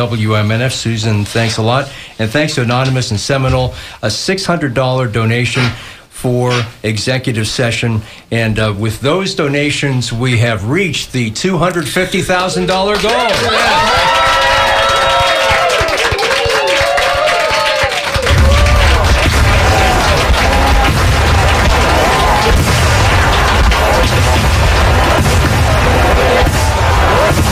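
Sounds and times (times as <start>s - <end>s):
speech: 0.0s - 14.3s
crowd noise and cheering: 12.3s - 27.5s
fireworks bursting and crackling in a dense barrage: 12.8s - 27.5s
loud fireworks booms: 18.2s - 27.5s
whistling rockets rising: 18.2s - 27.5s.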